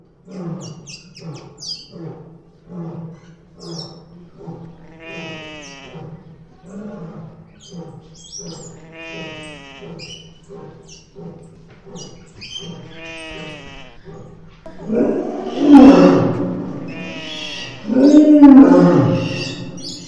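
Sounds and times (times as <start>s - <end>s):
zoo soundscape: 0.0s - 20.0s.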